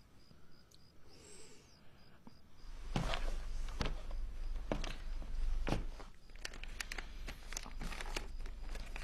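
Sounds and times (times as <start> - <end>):
sheets of paper rustling and crinkling as they are picked up: 2.9 - 9.0.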